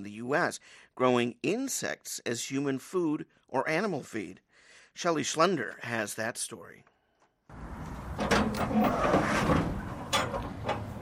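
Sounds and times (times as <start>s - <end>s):
speech: 0.0s - 4.4s, 5.0s - 6.9s, 7.5s - 9.6s
steel shipping container door scraping open: 7.5s - 11.0s
heavy metal latch creaking and clanking on a shipping container door: 7.6s - 11.0s.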